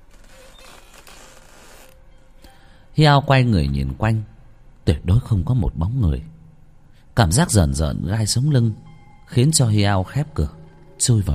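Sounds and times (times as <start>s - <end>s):
wooden stilt house creaking on a dark, windy night: 0.0s - 2.1s
speech: 3.0s - 4.3s, 4.9s - 6.4s, 7.2s - 11.3s.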